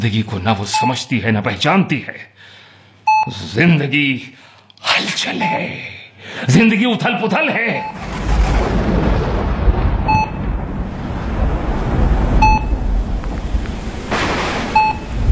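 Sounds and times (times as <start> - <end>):
speech: 0.0 - 2.6, 3.2 - 8.2
short electronic beeps: 3.1 - 3.3, 10.1 - 10.4, 12.4 - 12.8, 14.8 - 15.2
burst of noise: 7.8 - 15.2
deep rolling thunder: 7.8 - 15.2
heavy rain: 7.9 - 15.2.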